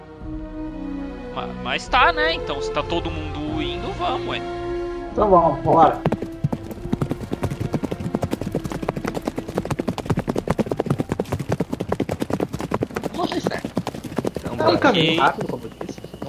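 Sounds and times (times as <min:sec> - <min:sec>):
speech: 0:01.4 - 0:04.6, 0:05.2 - 0:06.1, 0:14.8 - 0:15.6
horse hooves clip-clopping on a hard path: 0:05.6 - 0:16.2.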